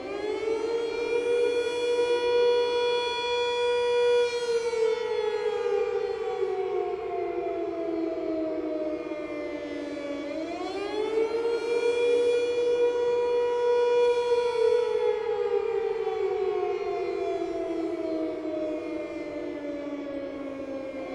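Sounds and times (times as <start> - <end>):
city siren: 0.0 - 21.1.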